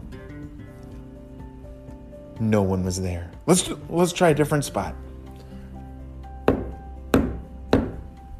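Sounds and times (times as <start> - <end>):
speech: 2.4 - 5.1
hollow knocks on a tree trunk: 6.5 - 8.0.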